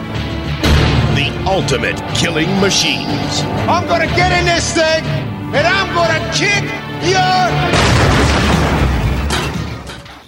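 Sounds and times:
speech: 1.2s - 8.6s
cinematic explosion from a film trailer with crackling debris: 7.7s - 9.9s.

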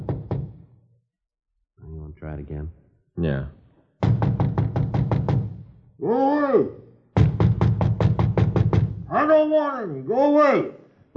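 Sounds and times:
rapid knocking on an apartment door: 0.0s - 0.6s, 4.0s - 5.6s, 7.2s - 9.1s
speech: 2.2s - 3.6s, 6.0s - 6.8s, 9.1s - 11.1s
person shouting: 6.0s - 6.8s, 9.1s - 10.8s.

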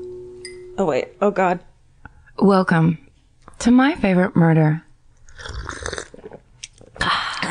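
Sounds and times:
speech: 0.8s - 1.7s, 2.4s - 3.0s, 3.6s - 5.7s
person sipping coffee: 5.2s - 6.4s.

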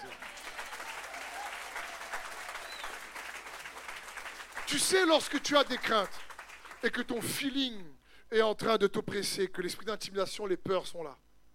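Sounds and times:
church congregation applauding and cheering in worship: 0.0s - 6.9s
speech: 4.7s - 11.2s.

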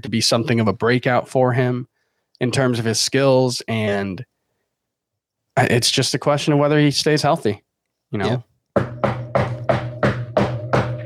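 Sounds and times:
speech: 0.0s - 4.3s, 5.6s - 8.5s
knocking on wood: 8.8s - 11.0s.

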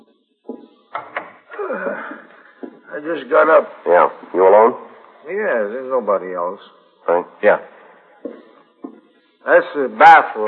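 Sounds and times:
door lock clicking: 0.9s - 1.5s
door creaking and scraping open: 0.9s - 1.7s
speech: 3.0s - 7.8s, 9.4s - 10.4s.

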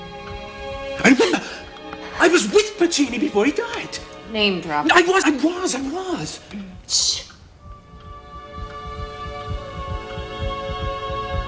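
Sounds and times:
speech: 1.0s - 1.6s, 2.2s - 7.3s
steady electronic hum: 5.4s - 11.4s
doubled heartbeat from someone with two hearts: 6.7s - 11.4s.

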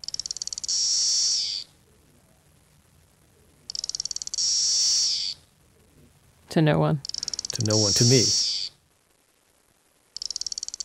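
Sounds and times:
single cicada singing with ticking pulses and buzzing drone: 0.1s - 1.6s, 3.7s - 5.4s, 7.1s - 8.7s, 10.2s - 10.8s
speech: 6.6s - 8.4s.

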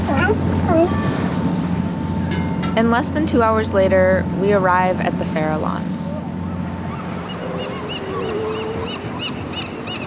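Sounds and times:
ocean water rushing: 0.0s - 10.0s
rocking boat engine drone: 0.0s - 10.0s
wind: 0.0s - 10.0s
speech: 0.3s - 1.1s, 2.8s - 6.2s
wavering animal-like calls: 6.9s - 10.0s.

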